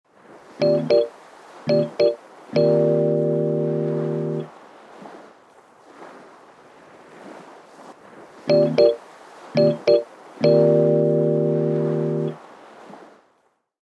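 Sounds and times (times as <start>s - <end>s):
Rhodes electric piano in stereo: 0.6s - 1.1s, 1.7s - 4.5s, 8.5s - 9.0s, 9.6s - 12.4s.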